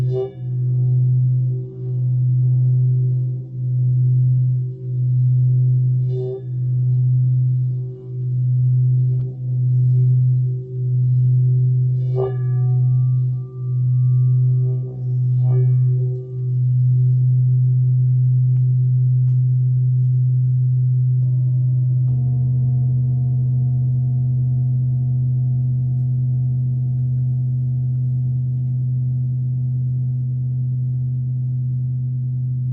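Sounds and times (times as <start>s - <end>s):
singing bowls humming: 0.0s - 32.7s.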